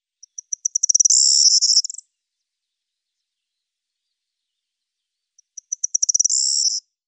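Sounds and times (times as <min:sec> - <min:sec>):
corn bunting Miliaria calandra singing: 0:00.2 - 0:02.0, 0:05.4 - 0:06.8.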